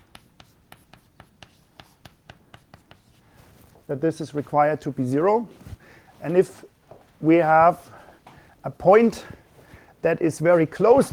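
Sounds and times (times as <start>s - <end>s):
person writing an equation: 0.0s - 3.2s
speech: 3.9s - 5.6s, 6.2s - 7.9s, 8.6s - 9.4s, 10.0s - 11.1s.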